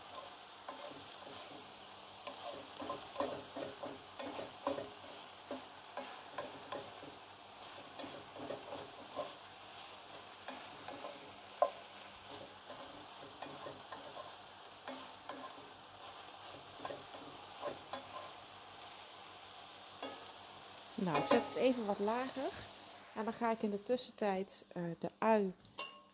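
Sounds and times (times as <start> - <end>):
utensil scraping and stirring food in a pan: 0.0 - 7.2, 7.8 - 18.4
food seasoned with salt and black pepper sizzling in a pan over high heat: 0.0 - 26.1
speech: 21.0 - 25.7.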